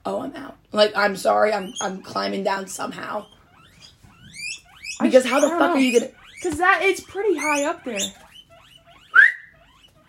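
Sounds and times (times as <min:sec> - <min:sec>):
speech: 0:00.0 - 0:03.4, 0:05.0 - 0:08.2
guinea pig squeaking: 0:00.8 - 0:10.0.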